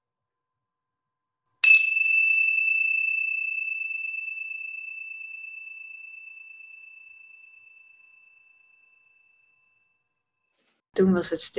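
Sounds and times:
single bright bell strike for a listening exercise: 1.6 - 9.5
speech: 11.0 - 11.5.

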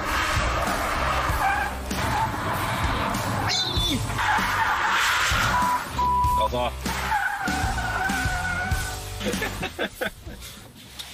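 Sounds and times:
short high tire squeal: 0.0 - 6.2, 6.8 - 9.0
585-horsepower car engine roaring while drifting: 0.0 - 9.6
tires skidding as a 585-horsepower car drifts: 0.0 - 9.6
speech: 6.5 - 6.9, 9.2 - 10.2
laughter: 9.2 - 10.6.

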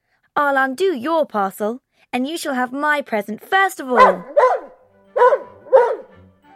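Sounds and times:
speech: 0.4 - 4.4
dog barking eagerly: 4.0 - 6.2.

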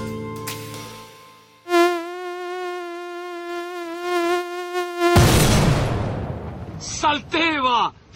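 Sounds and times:
mosquito whine near the ear: 0.9 - 5.4
deep booming thuds: 5.2 - 6.9
speech: 7.1 - 8.1.

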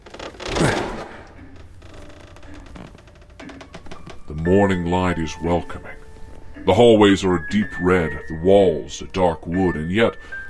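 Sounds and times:
door opening with a soft scraping whoosh: 0.0 - 5.2
speech: 4.4 - 5.9, 6.6 - 10.4.

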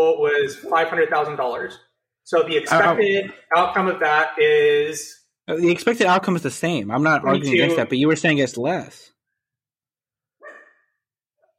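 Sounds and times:
speech: 0.0 - 9.1
dog barking: 10.4 - 11.0.

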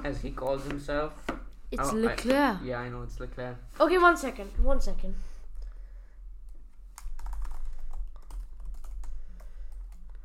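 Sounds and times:
speech: 0.0 - 5.3
typing on a computer keyboard: 6.9 - 10.2.

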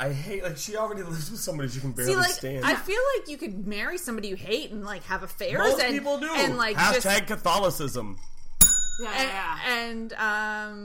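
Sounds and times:
speech: 0.0 - 8.4, 9.0 - 10.8
single bright bell ding: 8.6 - 9.6.

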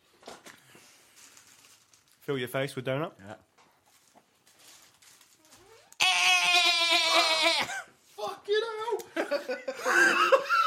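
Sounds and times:
speech: 2.3 - 3.5
person imitating an angry goat bleat: 6.0 - 7.9
laughter: 9.1 - 10.6.

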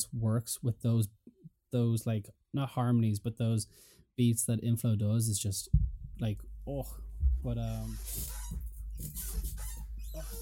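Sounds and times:
speech: 0.0 - 8.4
squeaky chair creaking under shifting weight: 7.7 - 10.4.

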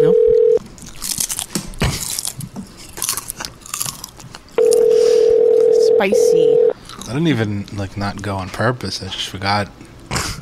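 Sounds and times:
steady continuous telephone-like tone: 0.0 - 0.6, 4.6 - 6.8
chewing and crunching potato chips: 0.6 - 4.8, 6.9 - 7.9
speech: 6.0 - 9.8.

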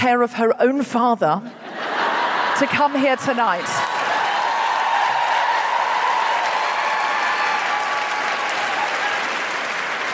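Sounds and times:
speech: 0.0 - 1.6, 2.6 - 3.8
laughter: 1.5 - 4.3
audience cheering: 3.2 - 10.1
loud applause from a large audience: 3.8 - 10.1.

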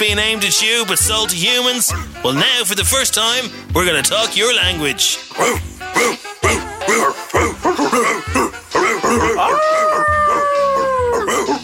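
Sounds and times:
speech: 0.0 - 10.1
dogs barking and yelping in a radio ad: 5.3 - 11.6
dog howling in a radio ad: 6.5 - 11.6.

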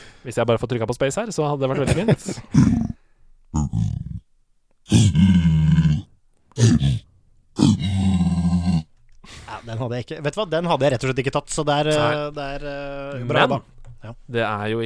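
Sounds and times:
speech: 0.2 - 2.9, 9.7 - 14.8
video game zombie pigman grunting and growling snorts: 2.5 - 3.0, 3.6 - 4.2, 4.9 - 7.0, 7.6 - 8.8.

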